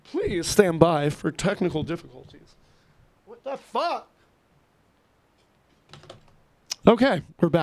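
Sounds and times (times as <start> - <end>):
speech: 0.2 - 2.6, 3.4 - 4.1, 6.8 - 7.6
object clattering on a computer keyboard: 5.9 - 6.4.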